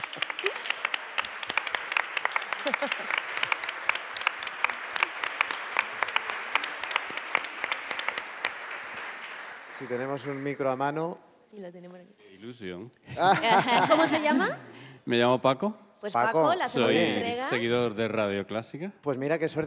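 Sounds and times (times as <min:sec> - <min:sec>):
audience applause: 0:00.0 - 0:10.9
laughter: 0:02.4 - 0:03.6, 0:13.1 - 0:14.6
speech: 0:02.7 - 0:03.2, 0:09.8 - 0:19.6.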